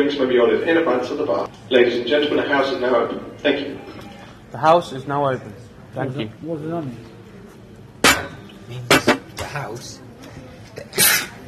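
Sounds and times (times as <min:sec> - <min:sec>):
speech: 0:00.0 - 0:07.1, 0:08.2 - 0:10.0
person sneezing: 0:10.9 - 0:11.4.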